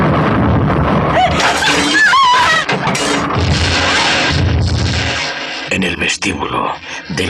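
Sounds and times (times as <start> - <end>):
bomb blast erupting into a roaring rumble: 0.0 - 5.4
speech: 6.2 - 7.2.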